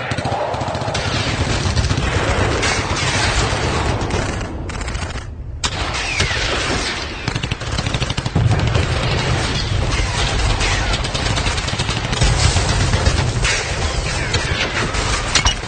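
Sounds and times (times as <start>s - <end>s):
gunfire volleys as French troops arrive: 0.0s - 15.6s.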